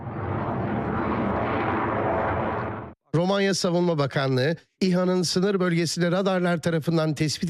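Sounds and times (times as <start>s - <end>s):
F-16 fighter jet engine roaring overhead: 0.0s - 3.0s
speech: 3.1s - 7.4s.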